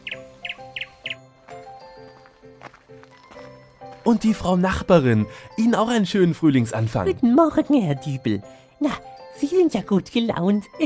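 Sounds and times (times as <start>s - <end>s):
small bird chirping on an early-spring morning: 0.0s - 1.3s
tonal musical background: 0.0s - 10.8s
speech: 4.1s - 10.8s.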